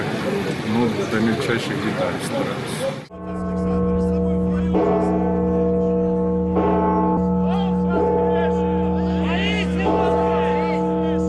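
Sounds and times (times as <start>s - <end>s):
faint murmur of people: 0.0s - 11.2s
speech: 0.8s - 3.5s
huge deep church bell struck on Easter Sunday: 3.1s - 11.2s.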